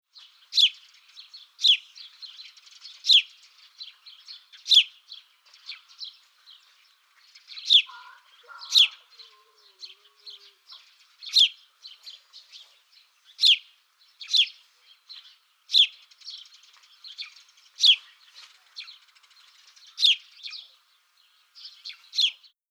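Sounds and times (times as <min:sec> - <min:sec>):
Passer domesticus chirping: 0:00.2 - 0:22.5.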